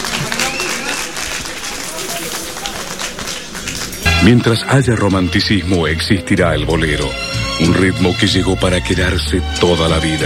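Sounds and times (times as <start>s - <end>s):
audience applause: 0.0s - 4.6s
speech: 4.2s - 10.2s.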